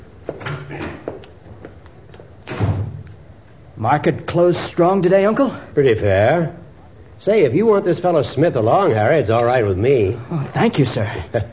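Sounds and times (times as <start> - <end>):
door thudding shut as a visitor leaves: 2.5 - 3.0
speech: 3.8 - 6.6, 7.2 - 11.5.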